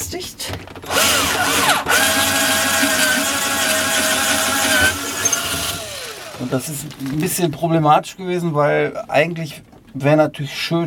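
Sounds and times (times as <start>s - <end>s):
speech: 0.1s - 0.4s, 6.5s - 10.8s
power drill drilling holes in a boat: 0.9s - 6.7s.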